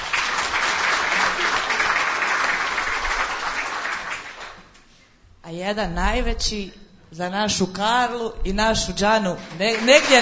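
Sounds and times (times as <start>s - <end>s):
audience applause at an evening stage program: 0.0s - 4.6s, 9.7s - 10.1s
speech: 5.6s - 10.1s.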